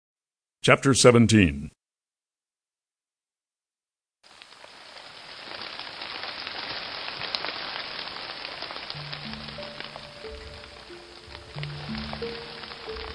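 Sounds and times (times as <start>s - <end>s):
speech: 0.6s - 1.8s
rain falling: 4.2s - 13.1s
soft sustained musical tones: 9.0s - 13.1s.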